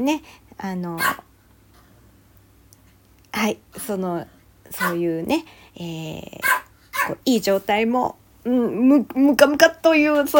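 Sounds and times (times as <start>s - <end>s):
speech: 0.0s - 1.3s, 3.3s - 6.5s, 7.1s - 10.3s
dog barking: 1.0s - 1.3s, 4.8s - 5.0s, 6.4s - 7.2s.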